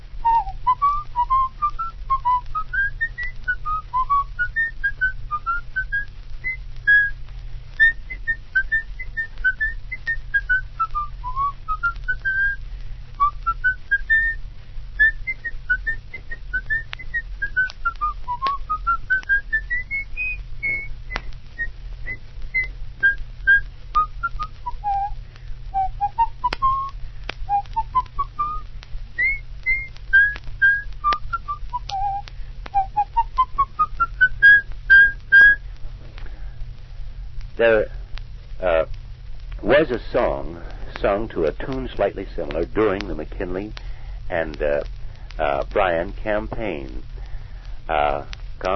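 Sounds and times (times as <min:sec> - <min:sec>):
constant low hum: 0:00.0 - 0:48.7
person whistling a lilting folk melody: 0:00.2 - 0:07.2, 0:07.8 - 0:12.6, 0:13.2 - 0:14.4, 0:15.0 - 0:28.6, 0:29.2 - 0:35.6
speech: 0:37.6 - 0:37.9, 0:39.8 - 0:47.1, 0:47.9 - 0:48.7.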